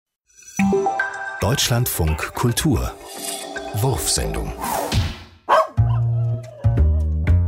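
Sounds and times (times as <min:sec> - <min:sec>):
speech: 0:01.4 - 0:04.8
dog barking and yowling: 0:05.5 - 0:07.1.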